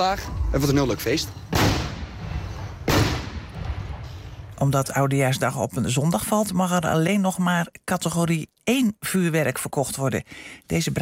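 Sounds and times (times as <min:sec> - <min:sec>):
speech: 0:00.0 - 0:01.8, 0:04.6 - 0:11.0
carbide cannon shot fired from a milk churn in a soggy meadow: 0:01.5 - 0:04.1.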